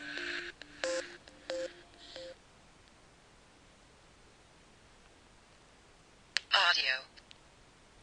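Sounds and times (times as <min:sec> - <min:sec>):
mobile phone startup melody of synthetic electronic notes: 0:00.0 - 0:02.4
quiet hiss: 0:00.0 - 0:08.0.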